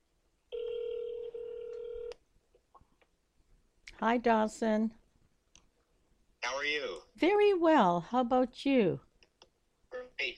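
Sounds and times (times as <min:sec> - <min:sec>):
electronic telephone dialing tone: 0:00.5 - 0:02.2
speech: 0:04.0 - 0:05.0, 0:06.7 - 0:09.1.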